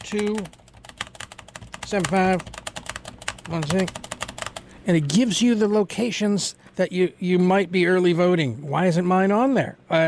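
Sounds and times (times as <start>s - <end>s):
keyboard typing: 0.0s - 4.7s
speech: 0.1s - 0.6s, 1.9s - 2.6s, 3.5s - 4.0s, 4.8s - 10.0s.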